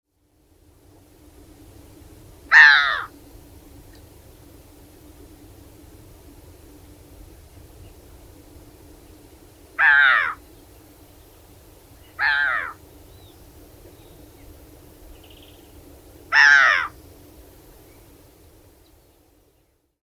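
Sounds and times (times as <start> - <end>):
grey-headed gull calling: 2.5 - 3.1, 9.8 - 10.4, 12.0 - 12.8, 16.3 - 17.0.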